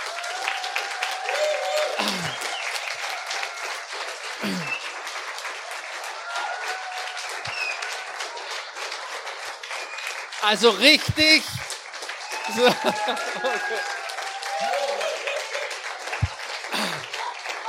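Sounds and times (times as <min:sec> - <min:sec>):
audience whoops and cheers: 0:00.0 - 0:03.9, 0:06.0 - 0:08.5, 0:12.2 - 0:16.3
large audience applauding children and teenagers after their skit: 0:00.0 - 0:17.6
laughter: 0:01.6 - 0:02.5, 0:12.4 - 0:17.6
speech: 0:10.4 - 0:11.6, 0:12.5 - 0:14.0.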